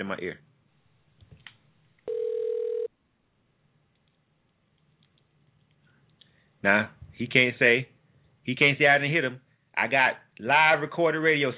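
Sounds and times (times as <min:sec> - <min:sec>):
speech: 0:00.0 - 0:00.5, 0:06.6 - 0:07.9, 0:08.5 - 0:11.5
faint noise: 0:00.0 - 0:11.5
ring tone of an outgoing telephone call: 0:02.1 - 0:02.9.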